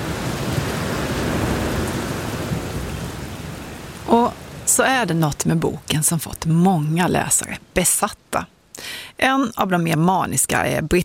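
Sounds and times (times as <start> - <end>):
deep rolling rumble of thunder: 0.0 - 4.7
heavy steady rain in a storm: 0.0 - 9.2
speech: 4.8 - 11.0.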